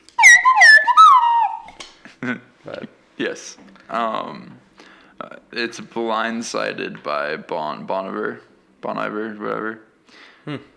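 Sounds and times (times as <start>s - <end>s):
slide whistle glissando: 0.0s - 1.8s
speech: 2.2s - 2.8s, 3.4s - 4.5s, 5.5s - 10.7s.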